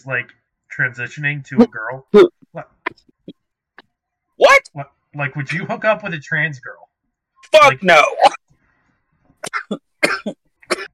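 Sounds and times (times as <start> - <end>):
speech: 0.0 - 3.2, 4.4 - 8.4, 9.5 - 10.4
person coughing in harsh raspy hacks: 9.4 - 10.9.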